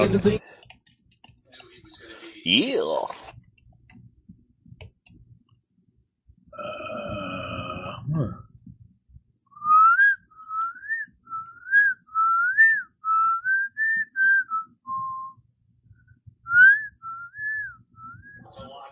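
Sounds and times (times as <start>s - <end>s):
speech: 0.0s - 0.6s, 2.4s - 3.3s
person whistling a lilting bird-like tune: 9.6s - 15.4s, 16.5s - 18.5s.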